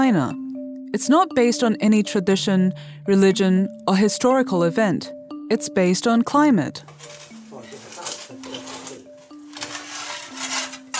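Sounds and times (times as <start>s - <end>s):
speech: 0.0s - 7.2s
coal being shoveled into a household heating stove in Heilongjiang province northern China: 6.9s - 10.9s.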